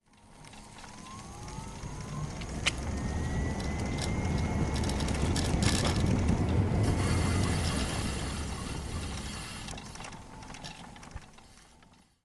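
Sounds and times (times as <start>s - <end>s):
electric scooter riding on an open road outdoors: 0.0s - 12.1s
wind during an electric scooter ride: 0.1s - 11.4s
electric scooter braking: 1.8s - 10.2s.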